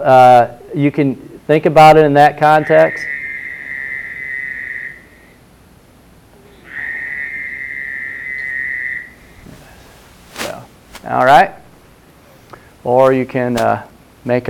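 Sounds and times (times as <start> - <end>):
speech: 0.0 - 3.2, 11.1 - 11.6, 12.8 - 14.4
Fowler's toad breeding call: 2.4 - 5.4, 6.4 - 9.5.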